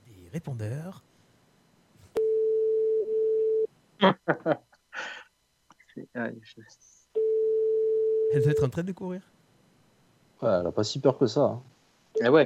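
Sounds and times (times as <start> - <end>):
speech: 0.3 - 1.2, 4.0 - 4.7, 6.0 - 7.0, 8.3 - 9.3, 10.4 - 12.4
telephone ringing tone on an outgoing call: 2.2 - 3.7, 7.2 - 8.7
laughter: 4.0 - 4.8.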